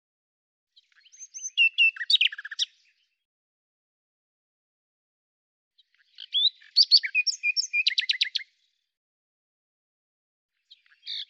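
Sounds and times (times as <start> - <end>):
common nightingale song: 0.8 - 3.2, 5.8 - 8.7, 10.6 - 11.2.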